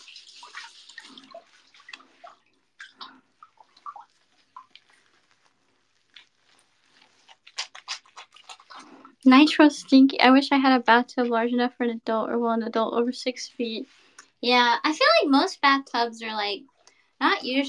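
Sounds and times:
wet squelching and splashing of shampoo worked into hair with water: 0.0s - 9.4s
speech: 9.2s - 17.6s.

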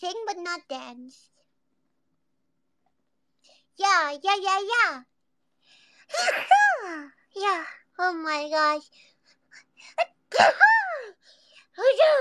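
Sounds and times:
speech: 0.0s - 1.4s, 3.8s - 5.1s, 6.1s - 9.1s, 9.8s - 11.2s, 11.8s - 12.1s
person sneezing: 6.1s - 6.7s.

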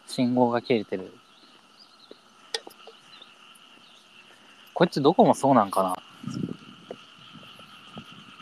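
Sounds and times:
steady high droning hum in the night air: 0.0s - 8.4s
speech: 0.2s - 1.2s, 4.8s - 6.4s
frog croaking at night: 2.0s - 8.4s.

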